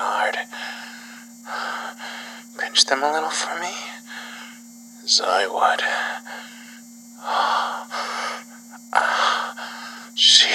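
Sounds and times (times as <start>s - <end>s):
steady low hum: 0.0s - 10.5s
heavy panting and moaning breaths: 0.5s - 2.6s, 6.0s - 10.2s
speech: 2.8s - 4.0s, 5.1s - 6.3s.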